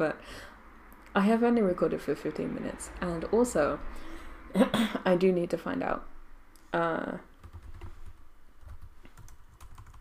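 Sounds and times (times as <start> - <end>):
speech: 0.0 - 0.5, 1.2 - 6.1, 6.7 - 7.3
typing on a computer keyboard: 7.4 - 10.0.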